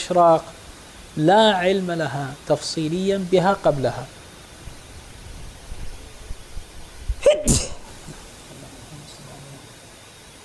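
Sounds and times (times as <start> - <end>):
speech: 0.1 - 0.6, 1.2 - 4.2
sneeze: 7.2 - 7.9.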